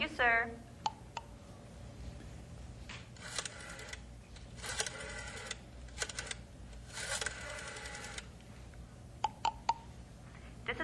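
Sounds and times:
low steady hum: 0:00.0 - 0:10.8
telephone number being dialed with clicks and whirring rattles: 0:03.2 - 0:08.3.

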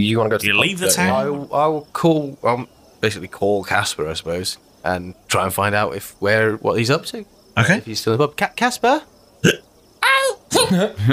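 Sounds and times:
speech: 0:00.0 - 0:09.7, 0:10.5 - 0:11.1
sharp squeaky hiccups: 0:09.4 - 0:09.6, 0:10.5 - 0:10.9.

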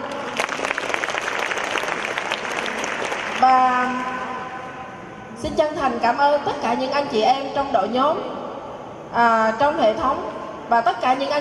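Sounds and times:
room full of people clapping: 0:00.2 - 0:03.4
speech: 0:03.4 - 0:04.1, 0:05.4 - 0:08.4, 0:09.1 - 0:11.3.

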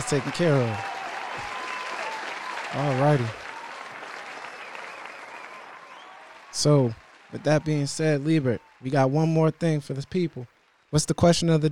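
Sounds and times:
speech: 0:00.0 - 0:00.9, 0:02.7 - 0:03.4, 0:06.6 - 0:11.7
crowd applauding: 0:00.0 - 0:11.5.

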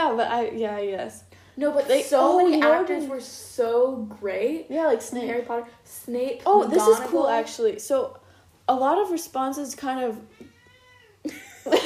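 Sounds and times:
speech: 0:00.1 - 0:10.5, 0:11.2 - 0:11.8
cat yowling: 0:10.3 - 0:11.3.

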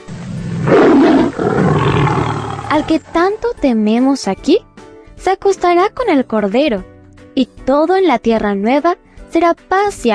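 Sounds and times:
lion roaring: 0:00.1 - 0:03.1
speech: 0:02.8 - 0:10.1.

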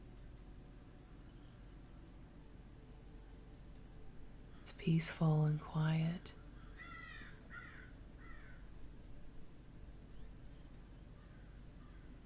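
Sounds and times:
low steady outdoor hum: 0:00.0 - 0:12.2
speech: 0:04.7 - 0:06.4
harsh cawing bird calls in quiet woods: 0:06.6 - 0:08.7, 0:11.2 - 0:12.2.

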